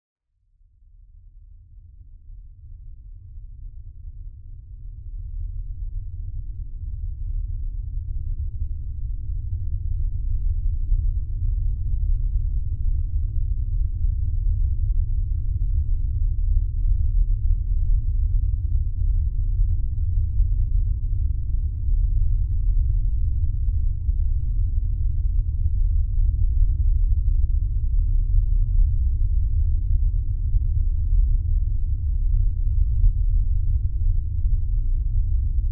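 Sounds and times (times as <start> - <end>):
science fiction deep space atmosphere hum drone: 0.5 - 35.7.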